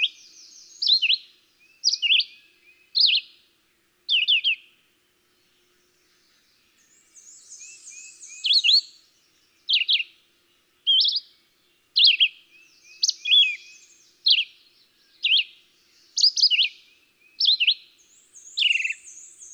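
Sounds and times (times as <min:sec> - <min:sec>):
Red-eyed Vireo singing whistled phrases: 0:00.0 - 0:03.3, 0:04.1 - 0:04.6, 0:06.8 - 0:09.0, 0:09.7 - 0:10.1, 0:10.9 - 0:11.3, 0:12.0 - 0:19.5.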